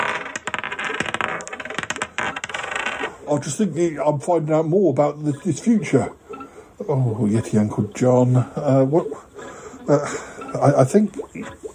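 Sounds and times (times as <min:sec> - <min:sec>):
dice rolled and clattering across a hard surface: 0:00.0 - 0:03.1
speech: 0:03.3 - 0:06.2, 0:06.8 - 0:09.3, 0:09.9 - 0:11.6.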